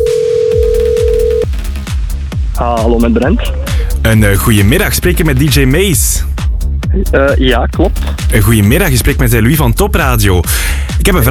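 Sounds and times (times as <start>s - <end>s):
steady telephone dial tone while calling someone: 0.0s - 1.5s
loud music bed with regular thumping beats: 0.0s - 11.2s
speech: 2.6s - 11.2s.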